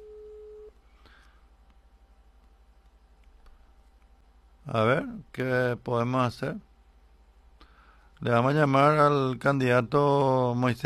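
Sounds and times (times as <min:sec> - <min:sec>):
telephone busy signal tone from an unanswered phone call: 0:00.0 - 0:00.7
faint noise: 0:00.0 - 0:10.8
speech: 0:04.7 - 0:06.7, 0:08.2 - 0:10.8.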